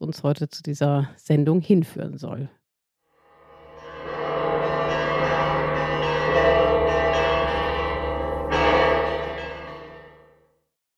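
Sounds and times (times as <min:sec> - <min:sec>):
speech: 0:00.0 - 0:02.6
church bells of the Church of the Holy Sepulchre pealing: 0:03.4 - 0:10.4.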